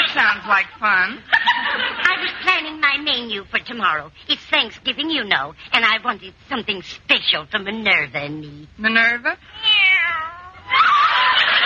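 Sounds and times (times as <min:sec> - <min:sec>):
laughter: 0:00.0 - 0:02.6, 0:10.6 - 0:11.6
speech: 0:00.4 - 0:09.7
kitten meowing: 0:09.5 - 0:10.7.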